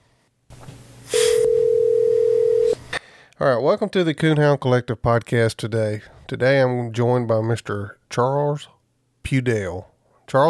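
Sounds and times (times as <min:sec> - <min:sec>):
telephone call ringing as a long steady electronic tone: 0:01.1 - 0:02.8
speech: 0:03.4 - 0:10.4.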